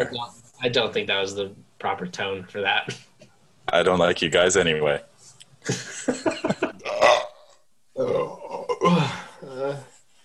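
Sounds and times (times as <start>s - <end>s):
speech: 0.0s - 3.1s, 3.7s - 6.6s
loud burp after shotgunning a tall-boy can of beer: 6.8s - 9.8s.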